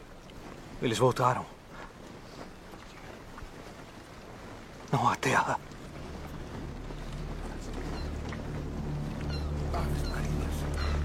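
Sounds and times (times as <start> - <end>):
speech: 0.8 - 1.6, 4.9 - 5.7
steady low rumble: 1.6 - 11.0
gulls crying: 5.4 - 11.0.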